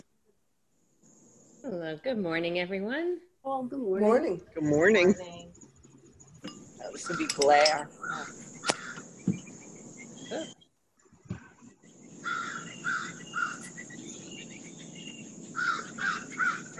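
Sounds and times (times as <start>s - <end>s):
steady insect-like hum: 0.0s - 16.7s
speech: 1.6s - 5.4s, 7.0s - 8.5s, 10.3s - 10.6s
crows cawing: 7.0s - 9.1s, 12.1s - 16.7s.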